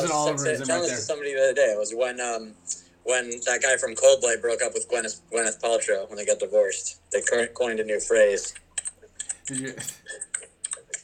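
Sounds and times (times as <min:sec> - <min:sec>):
speech: 0:00.0 - 0:08.6, 0:09.5 - 0:10.2
clacking of keys on a computer keyboard: 0:08.4 - 0:11.0.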